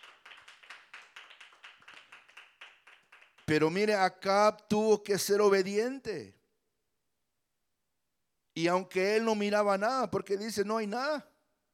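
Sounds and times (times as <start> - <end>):
audience clapping in a large room: 0.0 - 3.8
speech: 3.5 - 6.4, 8.6 - 11.3.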